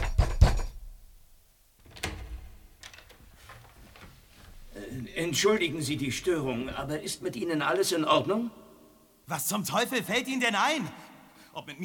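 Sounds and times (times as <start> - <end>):
knocking on a door: 0.0 - 0.8
speech: 5.2 - 8.6, 9.3 - 11.0, 11.6 - 11.8.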